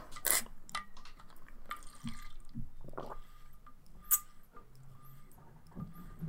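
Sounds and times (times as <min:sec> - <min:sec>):
person sipping and swallowing water: 0:01.3 - 0:06.2.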